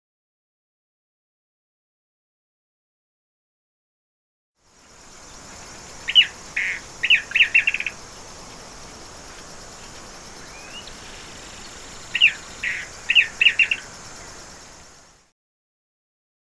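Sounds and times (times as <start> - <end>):
siete colores birds in Lampa: 4.8 - 15.3.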